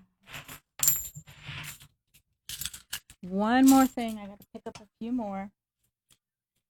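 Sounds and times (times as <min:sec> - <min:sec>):
90% silver coins clattering onto a hard surface: 0:00.2 - 0:01.9, 0:02.5 - 0:04.6
speech: 0:03.2 - 0:05.6.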